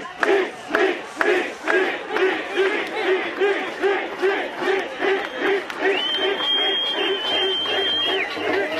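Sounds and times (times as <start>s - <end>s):
large protest crowd chanting a name: 0.0s - 8.7s
shrill sustained whistle: 5.2s - 8.4s.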